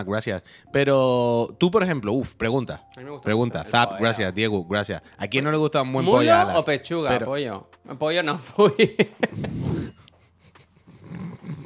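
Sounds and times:
speech: 0.0 - 9.9
laughter: 8.6 - 9.7
dog growling: 10.9 - 11.6.

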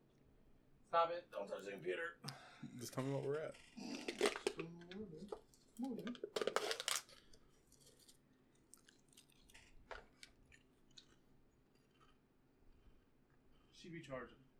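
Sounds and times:
speech: 0.9 - 6.2, 14.0 - 14.4
person chewing chips: 3.5 - 13.2.

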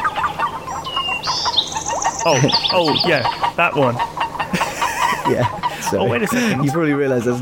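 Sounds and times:
high thin whistled bird calls: 0.0 - 3.6
dense busy wash of chirps and noise: 0.0 - 7.3
speech: 2.2 - 4.2, 5.2 - 7.3
laughter: 2.3 - 7.3.

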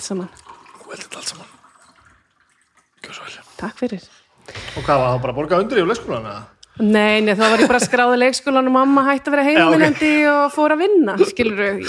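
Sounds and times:
speech: 0.0 - 1.6, 3.0 - 11.8
water pouring into a glass: 0.0 - 3.7.

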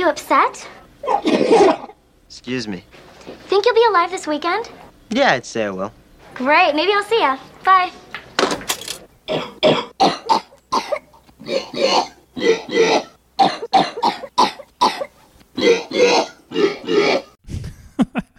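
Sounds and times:
speech: 0.0 - 8.0, 9.3 - 10.4
coughing and hacking noises played on a synthesizer: 1.0 - 2.0, 9.3 - 17.8.

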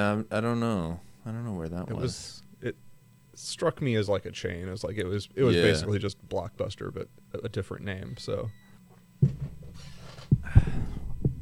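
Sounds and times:
speech: 0.0 - 2.8, 3.4 - 8.6
old chair creaking and squeaking as someone shifts in it: 9.3 - 10.4.

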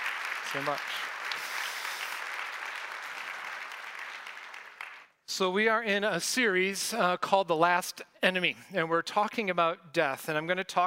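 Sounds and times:
large audience clapping: 0.0 - 5.2
speech: 0.5 - 1.1, 5.4 - 10.8.

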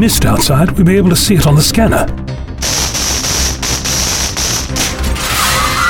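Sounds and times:
speech: 0.0 - 2.8
crackling pulsing bursts: 2.6 - 5.2
glass shattering: 2.6 - 5.8.

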